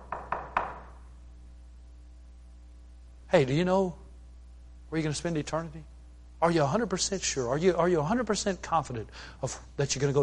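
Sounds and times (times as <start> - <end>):
knocking on a door: 0.0 - 1.0
speech: 3.3 - 4.0, 4.9 - 10.2.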